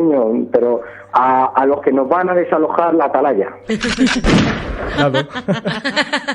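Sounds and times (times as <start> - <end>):
speech: 0.1 - 6.3
laughter: 3.7 - 6.3
gunshot sound effect: 4.2 - 4.9.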